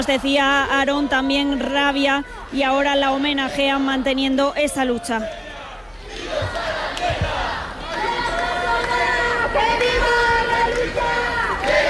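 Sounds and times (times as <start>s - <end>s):
speech: 0.0s - 5.4s
protest crowd chanting in front of the Congress of Deputies in Madrid: 3.2s - 11.8s.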